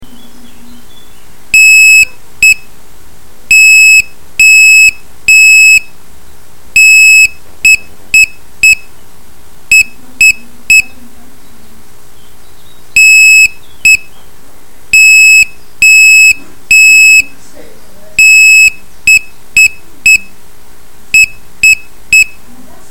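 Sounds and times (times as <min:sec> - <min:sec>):
morse code beeps: 0:01.6 - 0:02.6, 0:03.5 - 0:05.9, 0:06.8 - 0:08.9, 0:09.7 - 0:11.0, 0:13.0 - 0:14.1, 0:14.9 - 0:17.3, 0:18.2 - 0:20.3, 0:21.1 - 0:22.4.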